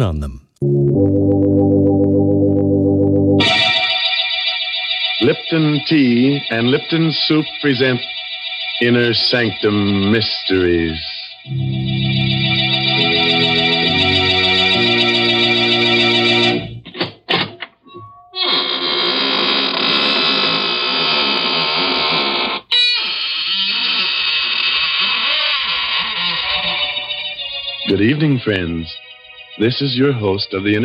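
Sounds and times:
speech: 0.0s - 1.8s, 5.2s - 11.9s, 28.0s - 29.0s, 29.6s - 30.8s
organ-like chord: 0.6s - 9.9s, 11.5s - 16.8s
door creaking open: 18.3s - 27.0s.

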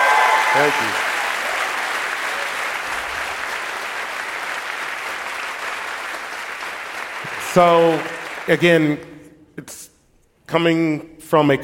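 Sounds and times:
large audience applause: 0.0s - 8.9s
speech: 0.5s - 1.1s, 7.6s - 9.9s, 10.5s - 11.6s.

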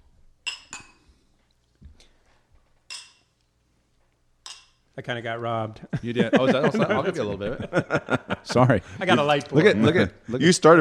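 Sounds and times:
glasses clinking together in a toast: 0.4s - 1.1s, 2.9s - 3.4s, 4.4s - 4.9s
speech: 5.0s - 10.7s
laughter: 5.8s - 10.5s.

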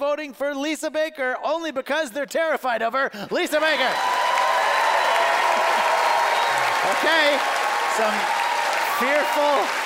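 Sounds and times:
speech: 0.0s - 4.1s, 6.9s - 8.4s, 9.0s - 9.8s
audience applauding to cast a vote at a live show: 3.6s - 9.8s.

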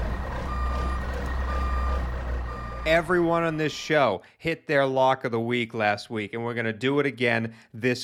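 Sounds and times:
diesel engine rumble: 0.0s - 3.9s
truck reversing alarm electronic beeps: 0.0s - 3.9s
speech: 2.8s - 8.0s.

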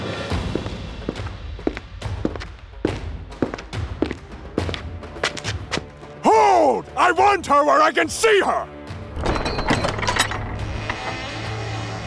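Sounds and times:
heavy evenly paced footsteps approaching from outside: 0.3s - 6.2s
speech: 7.1s - 8.7s
heavy door creaking open with grinding ratcheting creak: 9.1s - 11.7s.

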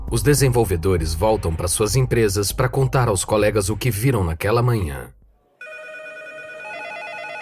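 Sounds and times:
speech: 0.1s - 5.2s
telephone ringing with a bright warbling electronic trill: 5.6s - 7.4s.

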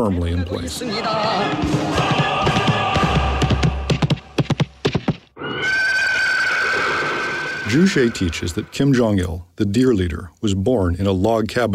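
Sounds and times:
speech: 0.0s - 2.4s, 7.7s - 11.7s
white horse galloping with hoofbeats: 0.8s - 5.3s
white horse whinnying: 5.4s - 8.6s.

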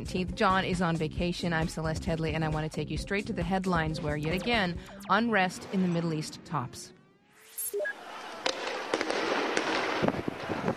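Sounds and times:
speech: 0.0s - 7.0s
gunshot-like bangs as riot police raid a square of sleeping protesters: 8.4s - 10.3s.

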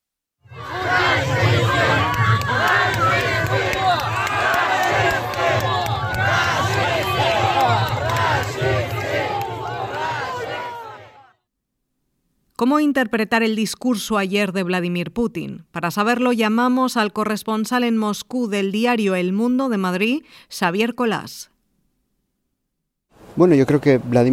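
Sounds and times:
crowd of protesters shouting angrily at an ambassador: 0.5s - 11.4s
speech: 12.6s - 21.5s, 23.4s - 24.3s.

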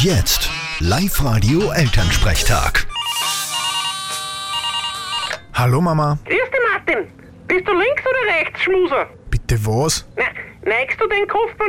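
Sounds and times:
speech: 0.0s - 2.9s, 5.6s - 11.6s
phone ringtone with bright electronic melody: 2.9s - 5.6s.

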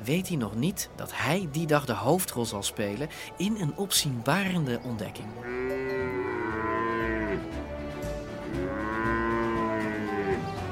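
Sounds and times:
speech: 0.0s - 5.6s
cattle mooing in dry Wyoming wilderness: 5.4s - 7.6s, 8.4s - 10.7s.

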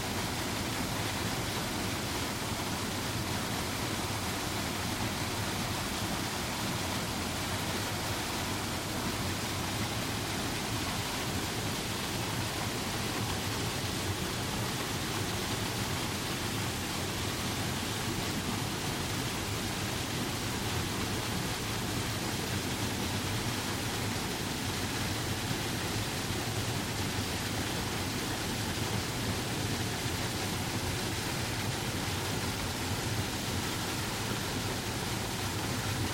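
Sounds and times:
waterfall roaring: 0.0s - 36.1s.

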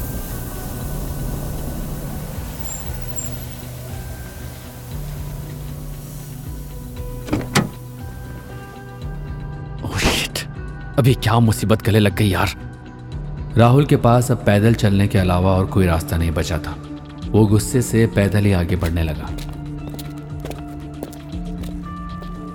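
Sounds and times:
car tire bursting and hissing flat: 0.0s - 8.4s
car rumble: 1.3s - 8.0s
speech: 11.0s - 12.7s, 13.6s - 19.5s.

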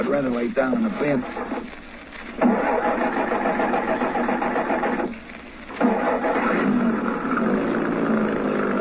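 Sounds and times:
speech: 0.0s - 1.8s
truck engine starting and running: 2.4s - 5.1s, 5.8s - 8.8s.

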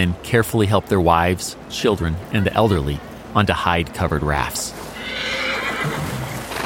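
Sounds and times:
speech: 0.0s - 6.0s
steady outdoor noise: 0.0s - 6.6s
faint hoof movement: 4.7s - 6.6s
horse neighing while swimming a cold river: 5.0s - 6.6s.

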